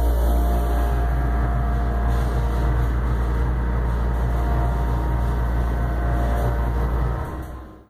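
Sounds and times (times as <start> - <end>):
elevator going up and stopping: 0.0 - 7.8.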